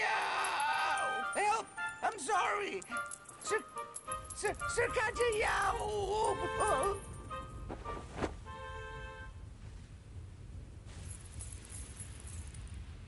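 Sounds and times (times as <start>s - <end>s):
gold coins clinking and jingling: 0.4s - 7.6s, 11.0s - 12.7s
speech: 2.3s - 7.1s
low steady rumble: 4.2s - 13.0s.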